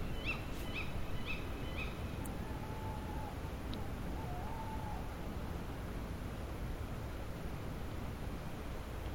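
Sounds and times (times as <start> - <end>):
female tawny owl sharp high calls at night in January: 0.0 - 5.2
steady hiss: 0.0 - 9.1.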